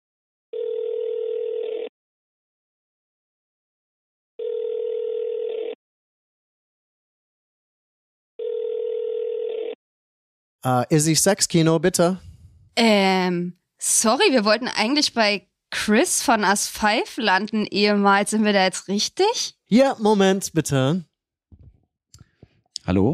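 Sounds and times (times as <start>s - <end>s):
telephone ringing tones: 0.5s - 1.9s, 4.4s - 5.8s, 8.4s - 9.8s
speech: 10.6s - 21.1s, 22.9s - 23.1s.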